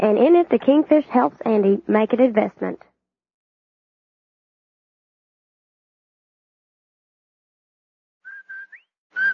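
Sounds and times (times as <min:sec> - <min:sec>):
speech: 0:00.0 - 0:02.9
whistled advertising jingle: 0:08.3 - 0:09.3.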